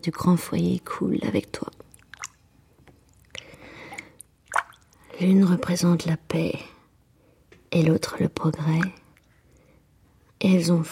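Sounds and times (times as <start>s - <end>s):
speech: 0.0s - 1.8s, 5.2s - 6.7s, 7.8s - 9.0s, 10.4s - 10.8s
water sloshing and dripping as hands move in a kitchen sink: 1.6s - 5.8s, 8.5s - 9.6s
water swirling in a kitchen sink: 3.1s - 5.0s.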